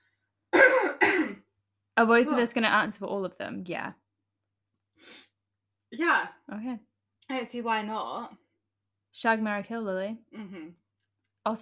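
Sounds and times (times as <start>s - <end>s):
speech: 2.0s - 4.0s, 5.9s - 8.4s, 9.2s - 10.8s, 11.4s - 11.6s
raspy throat clearing: 10.4s - 10.8s.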